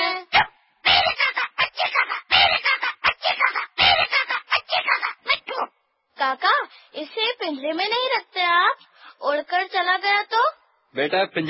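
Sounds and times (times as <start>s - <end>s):
pet parrot squawking: 0.3s - 5.7s
speech: 6.2s - 11.4s.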